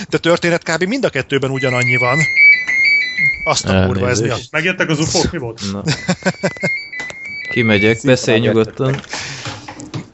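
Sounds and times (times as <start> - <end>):
speech: 0.0 - 6.8, 7.5 - 9.4
phone ringing with warbling electronic tone: 1.4 - 4.5, 5.9 - 9.0
laughter: 5.6 - 6.9.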